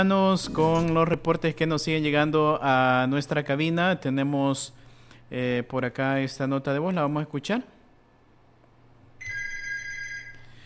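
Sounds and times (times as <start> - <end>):
speech: 0.0 - 7.8
telephone ringing with an incoming call: 9.2 - 10.6.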